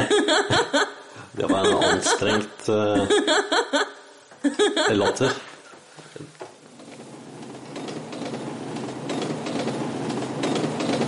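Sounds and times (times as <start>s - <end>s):
laughter: 0.0s - 5.5s
speech: 1.6s - 5.5s
faint rhythmic clatter of train wheels: 6.7s - 11.0s
train rumbling along tracks: 7.3s - 11.0s.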